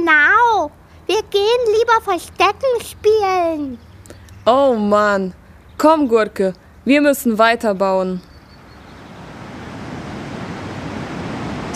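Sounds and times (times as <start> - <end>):
speech: 1.1 - 3.9, 4.5 - 8.3
wind blowing: 8.2 - 11.7.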